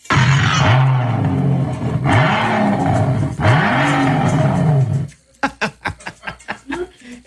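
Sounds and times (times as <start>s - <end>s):
car engine revving then idling with popping: 0.0s - 5.2s
laughter: 5.4s - 7.2s.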